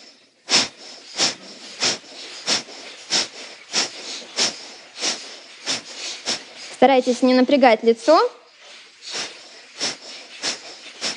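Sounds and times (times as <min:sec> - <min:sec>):
forceful rhythmic kapalabhati breath exhalations: 0:00.0 - 0:06.8, 0:08.4 - 0:11.1
speech: 0:06.8 - 0:08.4.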